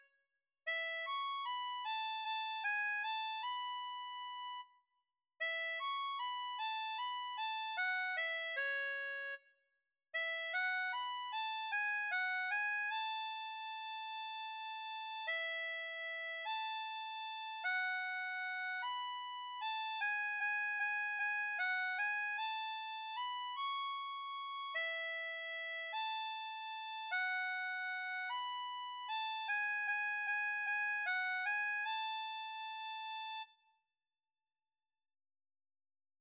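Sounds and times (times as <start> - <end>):
harmonica folk song melody: 0.7 - 4.6, 5.4 - 9.2, 10.2 - 33.5.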